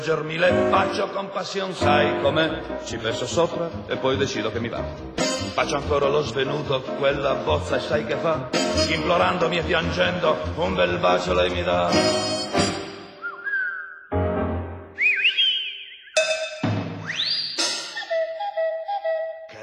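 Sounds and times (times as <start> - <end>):
speech: 0.0 - 12.4
slide whistle tones in a song: 12.0 - 14.2, 14.8 - 19.5.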